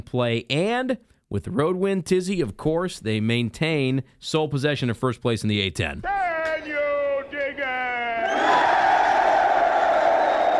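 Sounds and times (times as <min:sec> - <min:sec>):
speech: 0:00.0 - 0:06.8
large crowd cheering wildly: 0:06.1 - 0:10.5.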